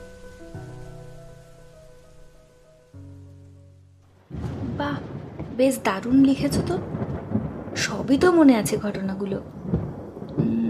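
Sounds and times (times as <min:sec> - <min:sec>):
soft sustained musical tones: 0:00.0 - 0:04.3
steady rain falling on a footpath: 0:04.0 - 0:10.6
speech: 0:05.6 - 0:06.9, 0:07.8 - 0:09.7.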